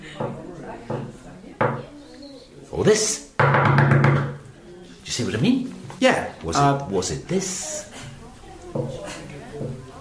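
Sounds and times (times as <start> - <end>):
slow patient knocking on a wooden door: 0.2 - 1.8, 3.4 - 4.4
speech: 2.7 - 3.8, 5.2 - 7.9.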